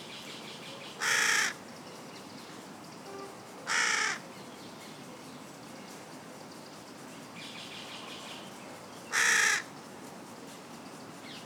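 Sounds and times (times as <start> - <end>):
carrion crow Corvus corone cawing: 1.0 - 1.6, 3.7 - 4.2, 9.1 - 9.7.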